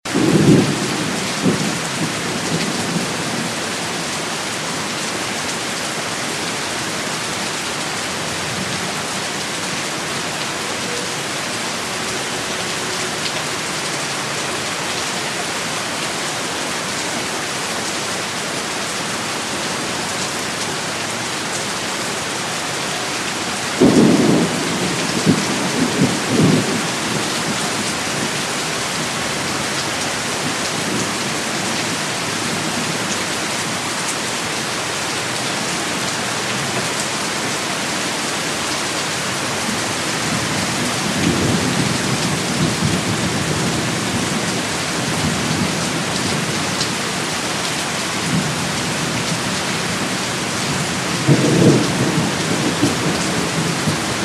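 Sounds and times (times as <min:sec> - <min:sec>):
heavy rain in a storm: 0:00.0 - 0:54.2
thunderstorm: 0:00.1 - 0:03.6, 0:23.8 - 0:28.4, 0:40.2 - 0:46.5, 0:48.2 - 0:54.2.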